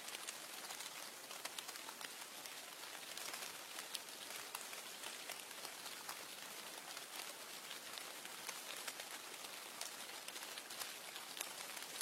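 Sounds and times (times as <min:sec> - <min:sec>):
steady rain pattering outside a window: 0:00.0 - 0:12.0.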